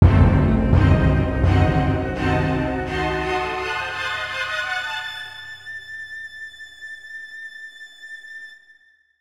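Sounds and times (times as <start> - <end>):
dramatic ascending orchestral music: 0.0 - 5.7.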